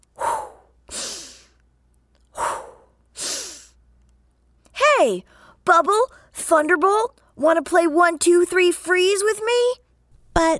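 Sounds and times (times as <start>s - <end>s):
deep breathing voiced for an angry dragon character: 0.0s - 1.6s, 2.3s - 3.8s
speech: 5.0s - 9.8s, 10.4s - 10.5s.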